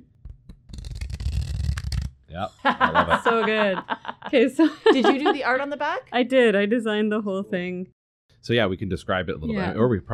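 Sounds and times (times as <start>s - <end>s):
deck of cards being shuffled: 0.3s - 2.2s
speech: 2.3s - 10.1s
laughter: 2.6s - 5.5s.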